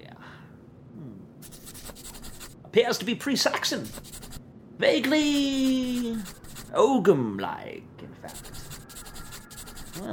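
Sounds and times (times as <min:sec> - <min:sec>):
pen scratching across a small scrap of paper: 0:01.4 - 0:02.6, 0:03.8 - 0:04.4, 0:05.2 - 0:06.7, 0:08.3 - 0:10.1
speech: 0:02.8 - 0:04.1, 0:04.8 - 0:08.6, 0:10.0 - 0:10.1.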